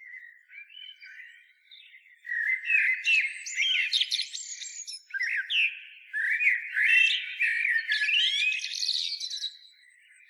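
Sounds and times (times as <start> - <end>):
Eurasian blackbird Turdus merula singing whistles and twittering: 0.0 - 10.2.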